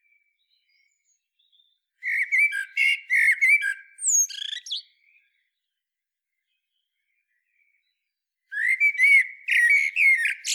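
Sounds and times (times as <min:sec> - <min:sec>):
common blackbird Turdus merula whistling a fluted phrase: 0:02.0 - 0:04.8, 0:08.6 - 0:10.5.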